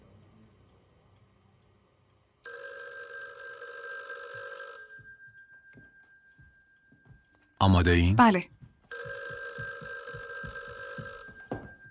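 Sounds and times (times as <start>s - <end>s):
telephone bell ringing faintly: 2.5s - 6.8s, 7.6s - 11.8s
speech: 7.6s - 8.6s.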